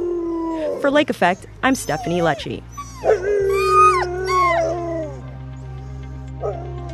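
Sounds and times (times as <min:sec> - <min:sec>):
Door County sled dogs howling and whining together: 0:00.0 - 0:06.9
steady low hum: 0:00.1 - 0:06.9
speech: 0:00.8 - 0:03.4
sled dog yelping: 0:01.3 - 0:04.9.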